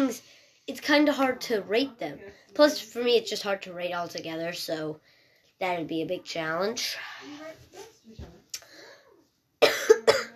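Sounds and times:
speech: 0:00.0 - 0:08.4
person coughing: 0:09.6 - 0:10.3.

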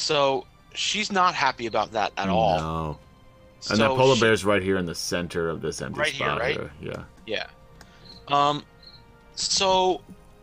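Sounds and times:
speech: 0:00.0 - 0:07.6, 0:08.3 - 0:08.7, 0:09.4 - 0:10.2
crickets chirping in a thin high trill: 0:07.9 - 0:09.2.

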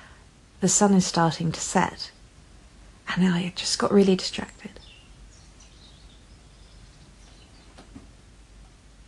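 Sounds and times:
low outdoor rumble: 0:00.0 - 0:09.0
speech: 0:00.6 - 0:02.2, 0:03.1 - 0:04.8
small birds tweeting at sunset: 0:03.3 - 0:08.4.

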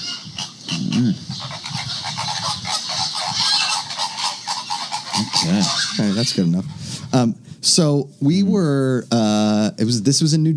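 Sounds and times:
flamingo calls, nasal goose-like honks: 0:00.0 - 0:06.8
rough noise: 0:00.0 - 0:10.5
speech: 0:01.0 - 0:01.6, 0:05.4 - 0:10.5.

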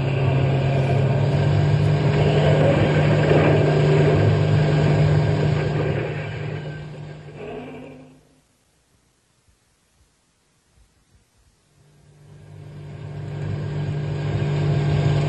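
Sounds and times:
car engine roaring: 0:00.0 - 0:08.4, 0:11.8 - 0:15.2
broad road-noise hiss: 0:00.0 - 0:15.2.

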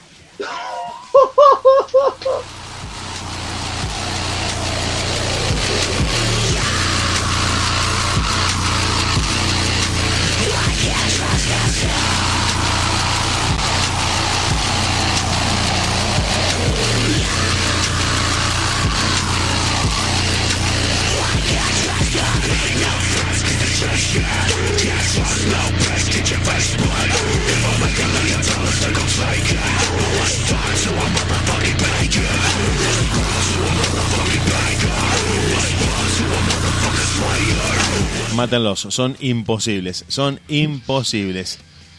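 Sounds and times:
distorted guitars in a post-hardcore song: 0:00.0 - 0:38.8
laughter: 0:01.1 - 0:02.5
speech: 0:38.5 - 0:41.7.

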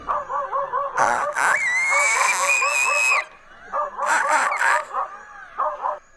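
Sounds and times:
dog barking and yelping, defending from leopard: 0:00.0 - 0:06.0
dog squealing: 0:01.0 - 0:03.3, 0:04.0 - 0:05.0.

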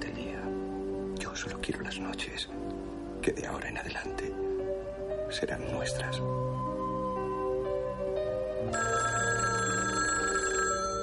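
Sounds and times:
dense musical background: 0:00.0 - 0:11.0
speech: 0:01.4 - 0:04.5, 0:05.3 - 0:06.6
telephone bell ringing: 0:08.7 - 0:11.0.

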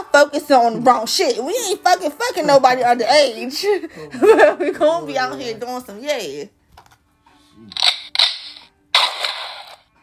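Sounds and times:
speech: 0:00.2 - 0:06.6
loud gunshot blasts: 0:07.8 - 0:09.8.

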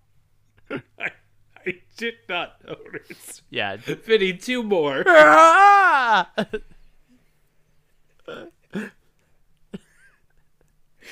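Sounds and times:
speech: 0:00.7 - 0:06.7
laughter: 0:02.6 - 0:04.0
person imitating a feeble horror-movie scream: 0:05.0 - 0:06.4.

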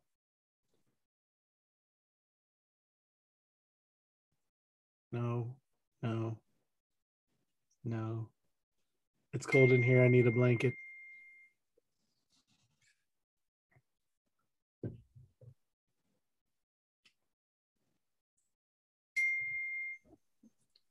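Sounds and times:
speech: 0:05.1 - 0:06.4, 0:07.8 - 0:08.4, 0:09.3 - 0:10.8
electronic computer notification chimes during a video meeting: 0:09.4 - 0:10.9.

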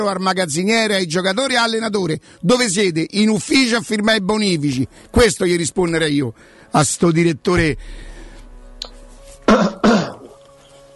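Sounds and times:
speech: 0:00.0 - 0:08.1, 0:09.5 - 0:09.8
coughing: 0:09.5 - 0:10.4.

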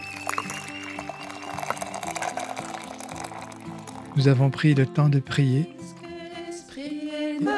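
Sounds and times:
hot lemon herbal tea pouring into a cup in a small kitchen: 0:00.0 - 0:04.8
speech: 0:04.2 - 0:05.7.

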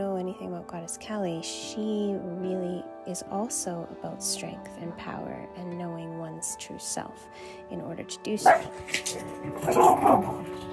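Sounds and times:
speech: 0:00.2 - 0:10.7
dogs barking indoors in a home: 0:08.4 - 0:10.7.

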